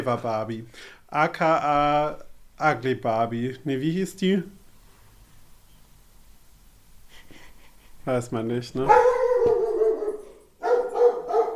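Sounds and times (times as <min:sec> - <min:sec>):
speech: 0:00.0 - 0:04.6, 0:08.0 - 0:09.2
dog indoors barking: 0:08.9 - 0:11.5.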